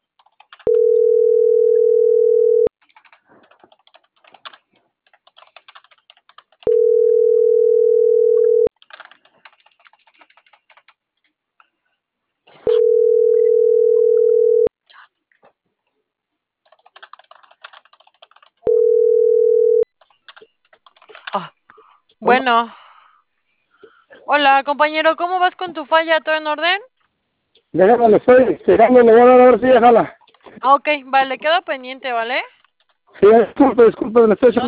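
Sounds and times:
telephone line tone beeps after dialing: 0.7 - 2.7, 6.7 - 8.7, 12.7 - 14.7, 18.7 - 19.8
speech: 22.3 - 22.8, 24.3 - 26.9, 27.7 - 32.6, 33.2 - 34.6.

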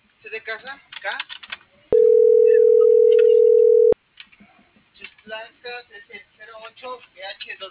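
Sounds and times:
speech: 0.3 - 1.5, 5.3 - 7.6
ringback tone of an unanswered telephone call: 1.9 - 4.0.

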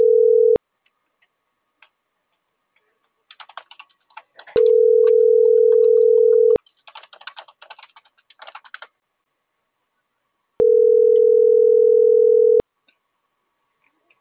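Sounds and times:
beep tones during a phone call: 0.0 - 0.6, 4.6 - 6.6, 10.6 - 12.6.

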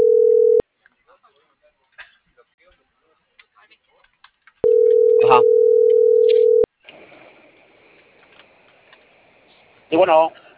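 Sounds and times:
telephone line tone as a call is dialed: 0.0 - 0.6, 4.6 - 6.7.

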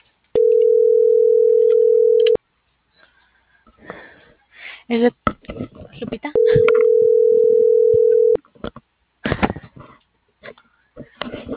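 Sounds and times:
telephone dial tone while calling an operator: 0.4 - 2.4, 6.4 - 8.4
speech: 4.9 - 6.7.

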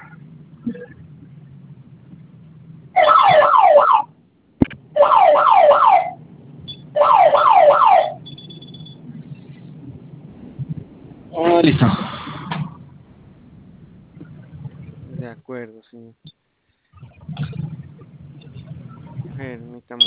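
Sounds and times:
low hum: 0.0 - 20.0
security alarm panel warbling electronic tone during a test: 3.0 - 4.0, 5.0 - 9.0.

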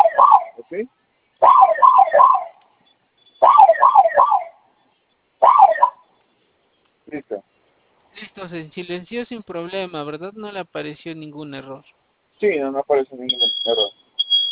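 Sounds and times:
home security alarm siren wailing: 0.0 - 0.6, 1.4 - 2.6, 3.4 - 4.6, 5.4 - 6.1, 13.3 - 14.4
speech: 0.7 - 1.6, 8.4 - 14.0.

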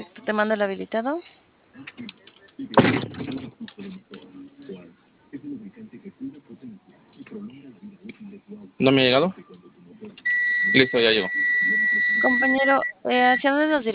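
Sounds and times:
speech: 0.3 - 4.1, 8.8 - 9.4, 10.7 - 11.4, 12.2 - 13.9
door clunk: 2.8 - 3.5.

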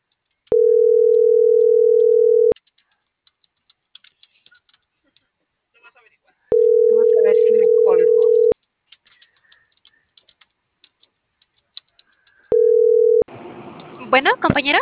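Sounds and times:
light keyboard clicks: 0.0 - 5.3, 7.9 - 12.6
telephone busy signal after a dropped call: 0.5 - 2.6, 6.5 - 8.6, 12.5 - 13.2
speech: 14.1 - 14.8.

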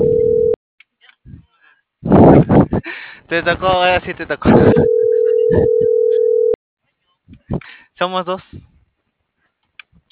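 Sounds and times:
telephone tone after an unanswered call: 0.0 - 0.6, 4.7 - 6.6
speech: 3.3 - 6.0, 7.5 - 8.7.

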